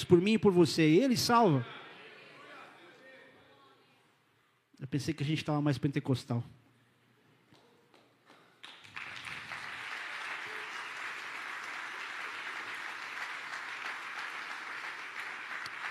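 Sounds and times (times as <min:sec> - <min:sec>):
speech: 0:00.0 - 0:01.8, 0:04.8 - 0:06.6
large church congregation applauding: 0:08.0 - 0:15.9.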